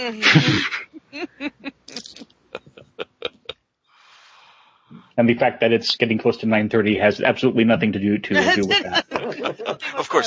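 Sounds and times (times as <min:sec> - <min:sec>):
speech: 0:00.0 - 0:01.3, 0:05.2 - 0:10.2
laughter: 0:00.0 - 0:03.5, 0:08.3 - 0:10.2
loud sneeze: 0:00.2 - 0:00.9
short clipped vocal sounds: 0:01.8 - 0:03.5.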